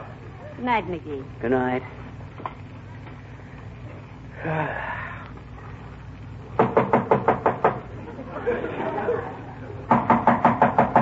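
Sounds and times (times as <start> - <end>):
low hum: 0.0 - 11.0
speech: 0.6 - 2.0, 4.4 - 5.0
knocking on a door: 6.6 - 7.9, 9.9 - 11.0
laughter: 8.0 - 9.9.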